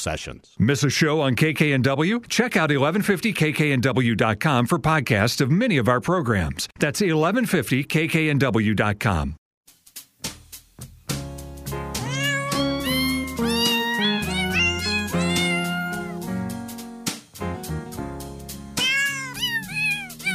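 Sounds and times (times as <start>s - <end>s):
speech: 0.0s - 9.4s
steady musical backing: 10.4s - 20.3s
pitched cat meows arranged into a bouncy holiday tune: 11.9s - 16.3s, 18.7s - 20.3s.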